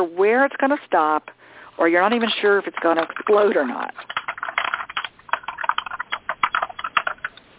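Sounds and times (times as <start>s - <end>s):
speech: 0.0s - 4.1s
typing on a computer keyboard heard over a phone line: 2.7s - 7.4s.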